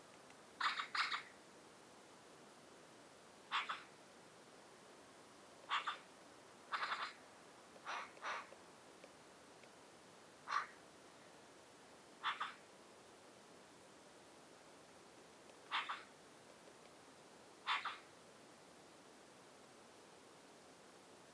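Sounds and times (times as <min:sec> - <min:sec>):
faint hiss: 0:00.0 - 0:21.3
Eurasian magpie Pica pica harsh chattering calls: 0:00.6 - 0:01.3, 0:03.5 - 0:03.9, 0:05.7 - 0:06.0, 0:06.7 - 0:07.2, 0:07.9 - 0:08.5, 0:12.2 - 0:12.6, 0:15.7 - 0:16.1, 0:17.7 - 0:18.0.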